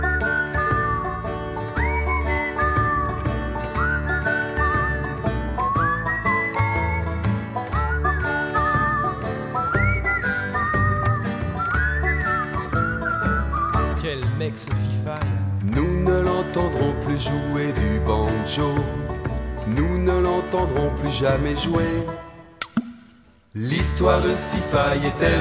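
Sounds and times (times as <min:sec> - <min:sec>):
person whistling a lilting tune: 0:00.0 - 0:14.0
steady musical accompaniment: 0:00.0 - 0:25.3
speech: 0:21.1 - 0:22.2, 0:23.6 - 0:25.3.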